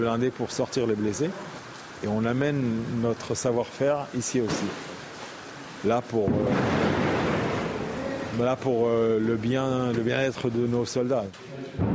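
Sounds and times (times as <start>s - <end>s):
speech: 0.0s - 4.9s, 5.8s - 6.9s, 8.4s - 11.8s
explosions and exchanges of fire across the border from Gaza: 6.2s - 8.5s.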